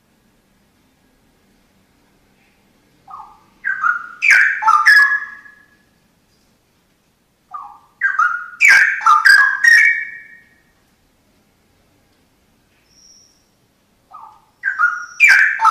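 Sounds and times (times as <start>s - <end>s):
Oriental magpie-robin song: 3.0s - 5.8s, 7.5s - 10.6s, 12.8s - 13.5s, 14.1s - 15.6s.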